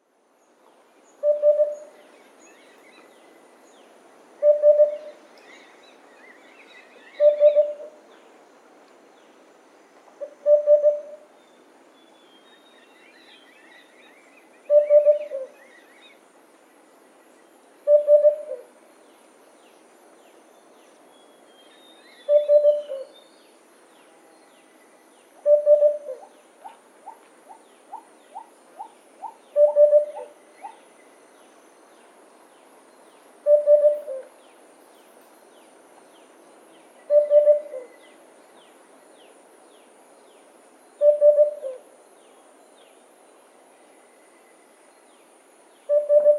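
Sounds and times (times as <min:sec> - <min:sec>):
Sunda cuckoo Cuculus lepidus lepidus calling: 0:01.2 - 0:02.0, 0:04.4 - 0:05.8, 0:07.0 - 0:08.0, 0:10.2 - 0:11.3, 0:14.1 - 0:16.2, 0:17.8 - 0:18.7, 0:22.1 - 0:23.2, 0:25.4 - 0:30.8, 0:33.4 - 0:34.4, 0:37.0 - 0:38.2, 0:41.0 - 0:41.8, 0:45.9 - 0:46.3.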